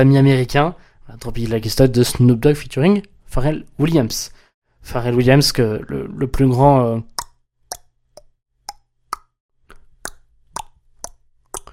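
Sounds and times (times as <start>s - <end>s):
speech: 0.0s - 7.1s
sharp tongue clicks: 7.1s - 11.7s.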